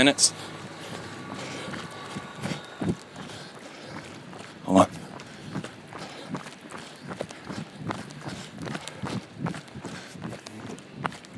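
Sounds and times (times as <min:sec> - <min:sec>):
speech: 0:00.0 - 0:00.6, 0:04.7 - 0:05.0
footsteps of a triathlete on a training run: 0:00.0 - 0:11.3.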